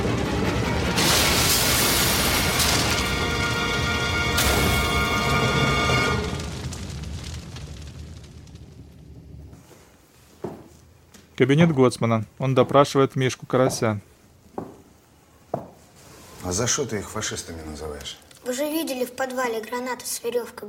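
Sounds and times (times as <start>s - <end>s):
truck crashing and tumbling down a steep slope: 0.0s - 8.5s
truck exploding in a roaring blast: 0.0s - 9.7s
speech: 11.4s - 14.1s, 16.4s - 20.6s.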